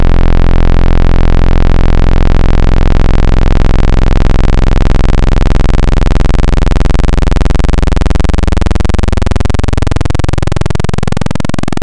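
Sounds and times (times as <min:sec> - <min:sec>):
analog PWM wavetable synthesizer tone: 0:00.0 - 0:11.8.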